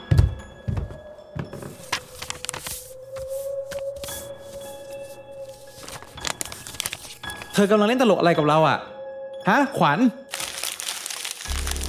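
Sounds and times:
several paper sheets rustling while handled and read: 1.6s - 7.7s, 10.3s - 11.8s
speech: 7.6s - 8.9s, 9.5s - 10.2s.

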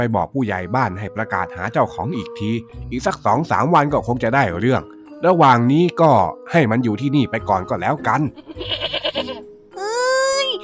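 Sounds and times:
speech: 0.0s - 9.0s
goat bleating: 8.3s - 9.4s.

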